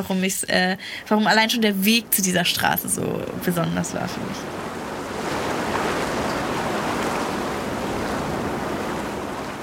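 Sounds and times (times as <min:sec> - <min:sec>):
speech: 0:00.0 - 0:04.7
water churning past a moving ferry from Manhattan to Staten Island: 0:02.2 - 0:09.6.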